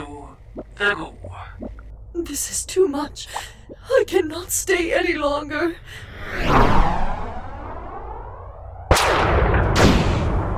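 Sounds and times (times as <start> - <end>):
speech: 0.8 - 1.2, 2.2 - 7.0
sweeping whoosh in a science-fiction audio drama: 6.1 - 8.9
gunfire blasts in a science-fiction audio drama: 8.9 - 10.5.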